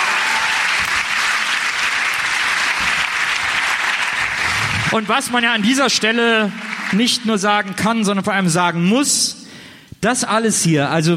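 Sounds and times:
audience applause: 0:00.0 - 0:07.5
speech: 0:04.9 - 0:09.4, 0:10.0 - 0:11.1.

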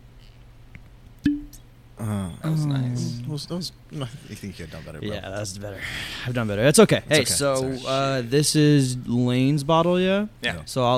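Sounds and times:
cork popping out of a bottle: 0:01.2 - 0:01.6
speech: 0:02.0 - 0:10.9.

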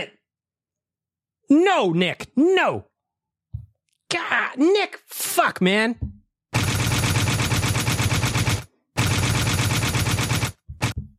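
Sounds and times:
speech: 0:01.5 - 0:02.9, 0:04.1 - 0:06.1
rapid automatic gunfire sound effect: 0:06.6 - 0:11.0.

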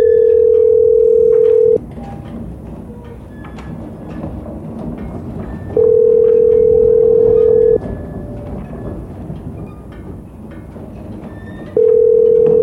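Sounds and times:
telephone ringback tone of a call waiting to be answered: 0:00.0 - 0:01.8, 0:05.8 - 0:07.8, 0:11.8 - 0:12.6
rumbling rattling background: 0:00.0 - 0:12.6.

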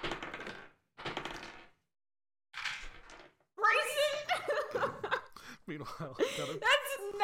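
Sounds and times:
die rolling on a hard table: 0:00.0 - 0:01.8, 0:02.6 - 0:03.4
laughter: 0:04.0 - 0:07.0
speech: 0:05.7 - 0:07.2.

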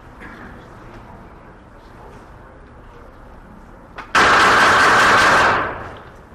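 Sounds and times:
handgun fired rapidly from the hip on a firing range: 0:04.1 - 0:06.0.

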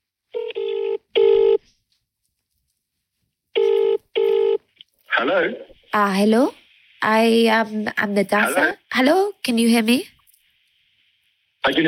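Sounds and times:
phone call ringing on speakerphone with electronic double-ring: 0:00.4 - 0:01.6, 0:03.6 - 0:04.6
speech: 0:05.2 - 0:10.2, 0:11.6 - 0:11.8.

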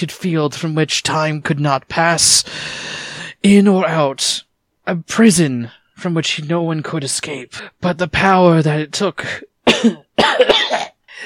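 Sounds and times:
speech: 0:00.0 - 0:11.2
person acting out a wet hacking cough, coughing up mucus: 0:09.6 - 0:11.0.

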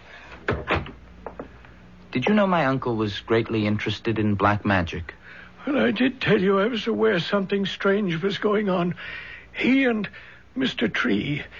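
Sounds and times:
door pushed shut: 0:00.5 - 0:01.4
speech: 0:02.2 - 0:11.5.

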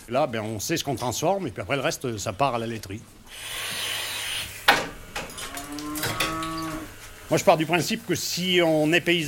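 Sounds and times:
speech: 0:00.1 - 0:03.7, 0:07.3 - 0:09.2
dairy cow mooing in a barn on a farm: 0:05.4 - 0:07.0.

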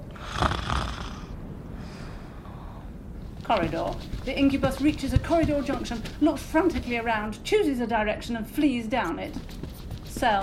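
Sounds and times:
person snoring while asleep in bed: 0:00.1 - 0:01.3
speech: 0:03.5 - 0:10.4.

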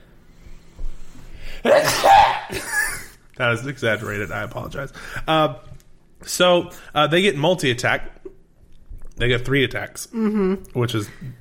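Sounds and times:
person sneezing: 0:01.6 - 0:03.2
speech: 0:03.4 - 0:08.2, 0:09.2 - 0:11.3.

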